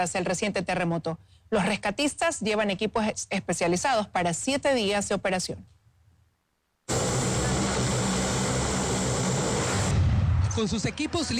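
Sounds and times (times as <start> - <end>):
speech: 0.0 - 5.8, 10.6 - 11.3
Hercules transport aircraft engines roaring: 6.9 - 10.2.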